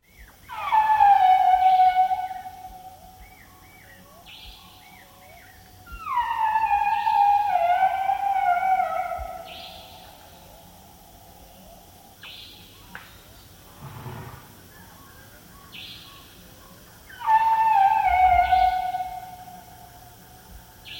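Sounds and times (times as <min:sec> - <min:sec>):
Asian elephant blare in Nepal: 0:00.5 - 0:03.2, 0:06.0 - 0:10.5, 0:17.1 - 0:20.2.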